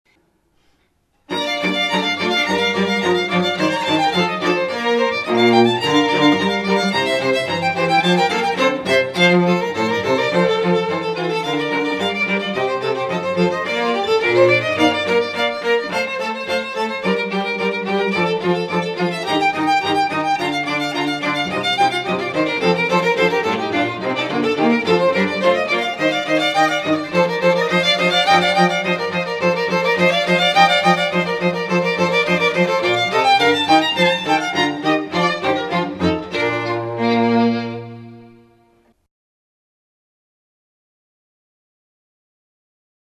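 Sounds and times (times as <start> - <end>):
strings: 1.3 - 38.9.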